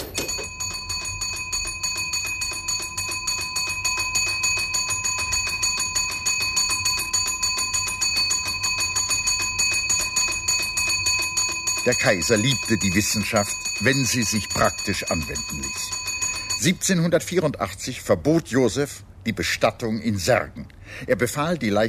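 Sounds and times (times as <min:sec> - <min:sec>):
rescue alarm bell ringing at a gravedigger's: 0:00.0 - 0:17.3
speech: 0:11.9 - 0:16.0, 0:16.6 - 0:21.8.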